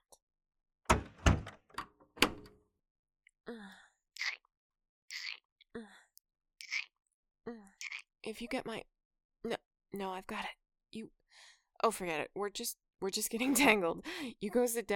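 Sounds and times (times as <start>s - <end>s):
office door pushed shut with heavy thuds and latching clatter: 0.9s - 2.6s
speech: 7.5s - 14.9s.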